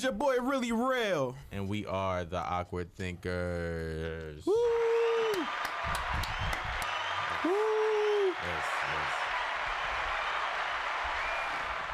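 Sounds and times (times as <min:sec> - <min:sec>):
speech: 0:00.0 - 0:05.6, 0:07.4 - 0:07.8
person cheering: 0:04.4 - 0:10.6
crowd applauding: 0:04.7 - 0:11.9.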